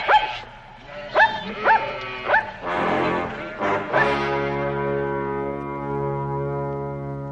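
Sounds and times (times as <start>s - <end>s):
dog barking: 0.0s - 0.4s, 1.2s - 2.6s
long low steady drone: 2.6s - 7.2s.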